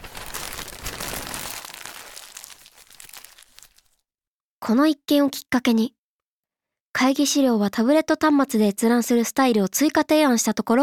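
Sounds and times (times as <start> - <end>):
large sheet of poster paper rustling and crinkling: 0.0 - 4.0
speech: 4.7 - 6.0, 7.0 - 10.8.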